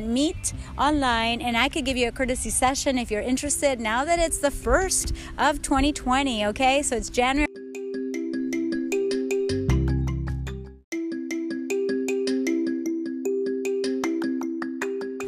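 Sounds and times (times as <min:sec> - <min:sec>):
speech: 0:00.0 - 0:07.5
phone ringtone melody of quick chiming notes: 0:07.4 - 0:15.2.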